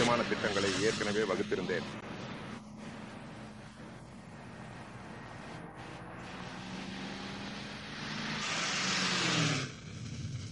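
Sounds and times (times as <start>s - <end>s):
steady road noise: 0.0s - 10.5s
speech: 0.1s - 2.0s
car engine roaring as it accelerates and pulls away: 6.2s - 9.9s.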